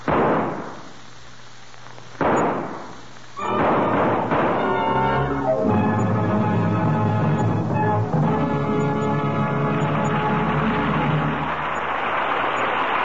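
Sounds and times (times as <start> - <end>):
rifle shots fired during a hunt: 0.0 - 1.0, 2.2 - 5.0
rumbling burst: 2.2 - 13.0.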